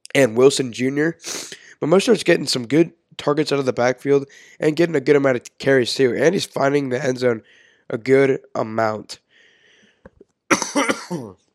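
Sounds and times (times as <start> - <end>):
speech: 0.2 - 9.2, 10.8 - 11.4
person coughing: 10.5 - 11.3.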